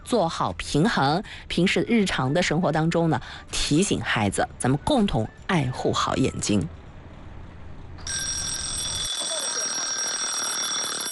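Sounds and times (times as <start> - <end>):
speech: 0.1 - 6.8
kitchen timer ringing: 8.1 - 11.1.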